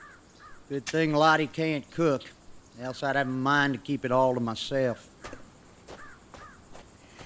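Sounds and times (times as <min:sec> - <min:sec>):
crow cawing while being fed: 0:00.0 - 0:00.6, 0:05.2 - 0:07.2
faint airy hiss: 0:00.0 - 0:07.2
speech: 0:00.7 - 0:05.1.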